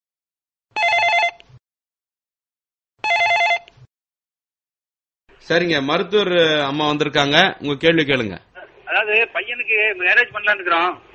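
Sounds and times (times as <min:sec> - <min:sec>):
telephone ringing for an incoming call: 0:00.8 - 0:01.6, 0:03.0 - 0:03.9
speech: 0:05.4 - 0:11.1.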